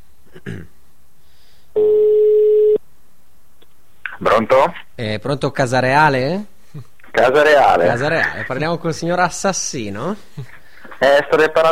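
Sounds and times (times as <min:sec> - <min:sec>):
telephone ringing tone on an outgoing call: 0:01.8 - 0:02.8
speech: 0:04.4 - 0:11.7.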